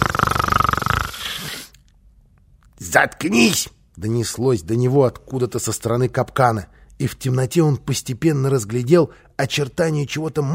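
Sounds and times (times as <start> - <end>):
voice imitating snoring with a rattling throaty sound: 0.0 - 1.8
speech: 2.9 - 10.5.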